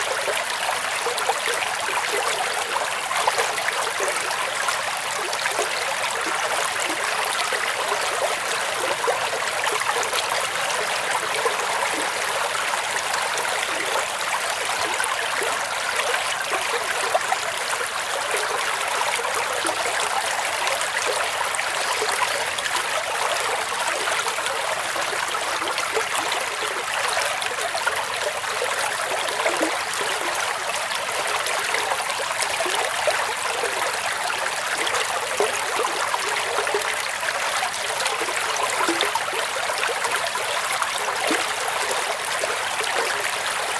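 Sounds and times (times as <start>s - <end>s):
babbling brook running over rocks and branches: 0.0s - 43.7s.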